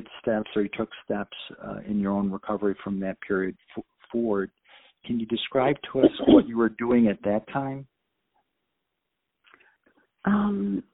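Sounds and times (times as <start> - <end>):
speech: 0.2 - 7.9, 10.2 - 10.9
throat clearing: 6.0 - 6.5.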